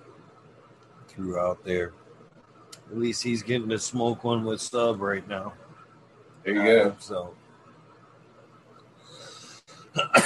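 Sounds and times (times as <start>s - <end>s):
speech: 1.1s - 2.0s, 2.9s - 5.6s, 6.4s - 7.4s
soft breathy noise: 8.9s - 9.9s
person coughing into the microphone: 9.9s - 10.2s.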